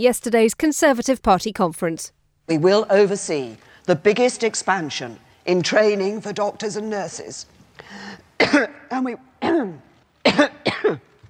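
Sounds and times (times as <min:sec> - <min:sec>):
speech: 0:00.0 - 0:11.1
person coughing: 0:08.4 - 0:08.8, 0:09.4 - 0:11.1
person clearing their throat: 0:09.4 - 0:11.2.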